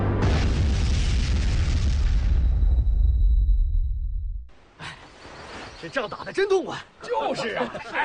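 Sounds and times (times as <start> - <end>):
ammunition depot explosion in a wartime battle: 0.2 - 4.5
speech: 5.9 - 8.0
laughter: 7.0 - 8.0.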